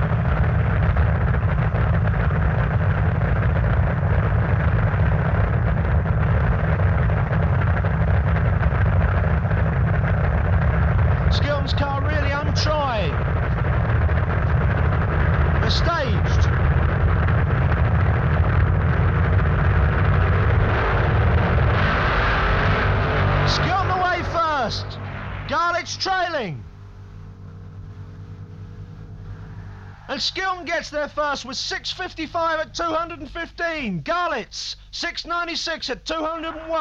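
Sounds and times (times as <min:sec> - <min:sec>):
two drag racing cars blasting down the strip: 0:00.0 - 0:33.4
commentator speaking over engine noise: 0:11.2 - 0:13.2, 0:15.5 - 0:16.5, 0:23.4 - 0:26.7, 0:30.1 - 0:36.7
speech: 0:30.2 - 0:36.7.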